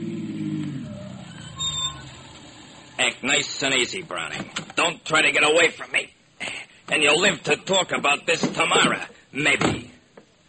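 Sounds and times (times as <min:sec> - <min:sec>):
car engine revving and driving off: 0:00.0 - 0:03.0
speech: 0:03.0 - 0:06.1, 0:06.9 - 0:09.9.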